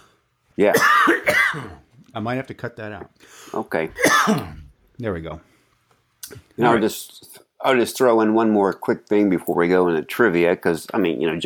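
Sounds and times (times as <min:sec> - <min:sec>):
speech: 0:00.6 - 0:05.5, 0:06.3 - 0:11.4
loud raspy smoker's cough performed on purpose: 0:00.7 - 0:01.9, 0:04.0 - 0:04.7.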